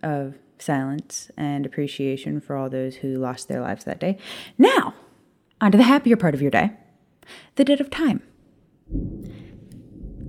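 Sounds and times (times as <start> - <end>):
speech: 0.0 - 5.0, 5.6 - 8.3, 8.9 - 9.3
low rumbling roll of thunder: 8.9 - 10.2.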